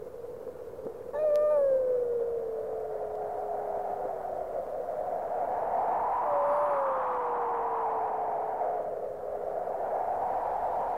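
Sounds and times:
steady windy hiss: 0.0 - 10.9
long sliding howls: 1.1 - 5.0, 5.9 - 9.2.

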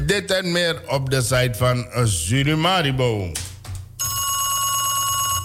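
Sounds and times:
speech: 0.1 - 3.5
telephone bell ringing: 4.0 - 5.4.

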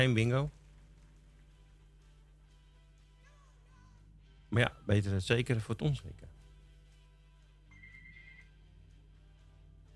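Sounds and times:
speech: 0.0 - 0.6, 4.5 - 6.3
steady low electrical hum: 0.0 - 9.9
telephone ringing with a thin electronic trill during a phone line test: 7.7 - 8.6.

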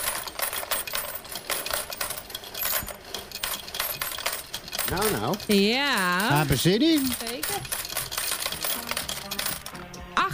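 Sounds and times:
metal coins tumbling out of a machine payout tray: 0.0 - 10.1
speech: 4.9 - 7.8.

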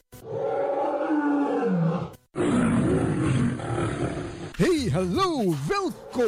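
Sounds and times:
lion roaring: 0.2 - 4.6
speech: 4.9 - 6.2.

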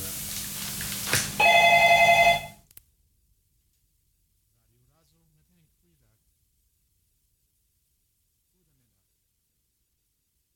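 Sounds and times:
telephone ringing with an electronic trill: 1.4 - 2.6.

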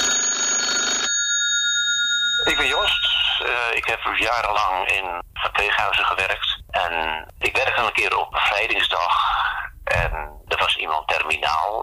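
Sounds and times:
telephone bell ringing: 0.0 - 3.8
speech: 2.5 - 9.3, 9.9 - 11.8.

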